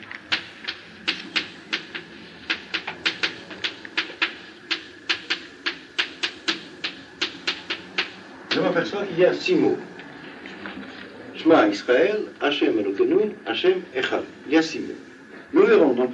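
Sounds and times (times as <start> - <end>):
quiet tapping clicks of writing out a prayer text: 0.0 - 8.6
speech: 8.6 - 9.9, 11.4 - 16.1.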